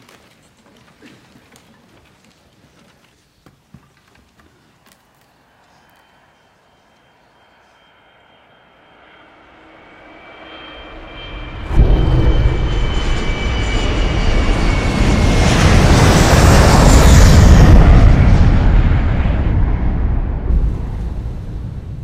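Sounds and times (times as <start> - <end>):
jet engines roaring heard from inside an airliner cockpit: 5.8 - 22.0.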